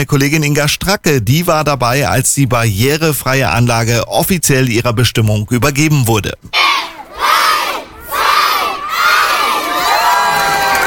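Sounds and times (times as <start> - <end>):
speech: 0.0 - 7.4
crowd of children cheering and shouting excitedly: 6.6 - 10.8.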